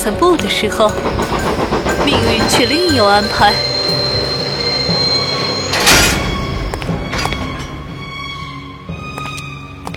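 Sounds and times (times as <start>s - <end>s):
speech: 0.0s - 1.5s, 2.1s - 3.7s
train rumbling on the rails: 0.0s - 9.8s
train wheels squealing while braking to a stop: 0.8s - 8.8s
train brakes hissing and screeching: 0.9s - 8.6s.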